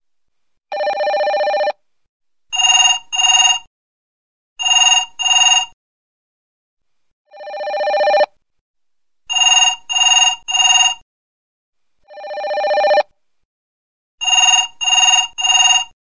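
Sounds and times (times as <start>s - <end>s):
old-style phone ringtone: 0.7s - 1.8s, 2.5s - 3.7s, 4.6s - 5.8s, 7.3s - 8.3s, 9.3s - 11.0s, 12.1s - 13.1s, 14.2s - 16.0s.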